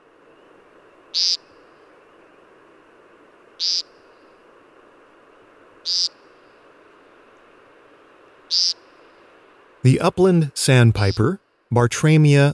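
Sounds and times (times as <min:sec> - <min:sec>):
steady hiss of night insects or frogs: 0:00.0 - 0:09.8
male American woodcock Scolopax minor buzzy nasal display call: 0:01.0 - 0:02.4, 0:03.6 - 0:04.4, 0:05.8 - 0:06.6, 0:08.5 - 0:09.2
speech: 0:01.2 - 0:01.4, 0:09.8 - 0:12.5.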